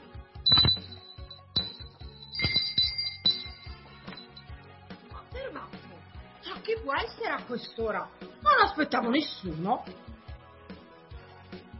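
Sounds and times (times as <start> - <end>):
bright high-pitched doorbell ringing: 0.5 - 4.5
speech: 6.6 - 10.1.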